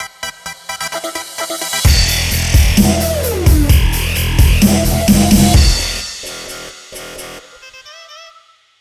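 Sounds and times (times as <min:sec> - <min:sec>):
dubstep logo sting: 0:00.0 - 0:08.2.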